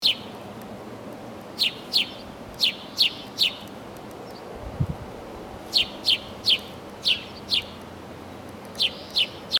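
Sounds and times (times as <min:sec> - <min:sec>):
house sparrows chirping: 0:00.0 - 0:00.4, 0:01.6 - 0:04.6, 0:05.6 - 0:07.9, 0:08.7 - 0:09.5.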